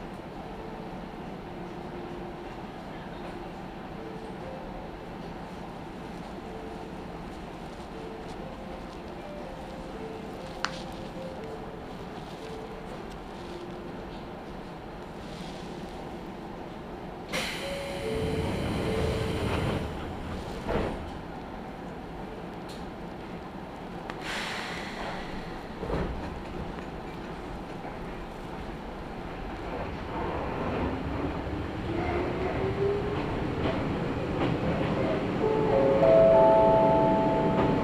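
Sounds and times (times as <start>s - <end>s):
electric commuter train rolling on rails heard from inside the carriage: 0.0s - 37.8s
electric commuter train brief hiss: 24.2s - 25.7s.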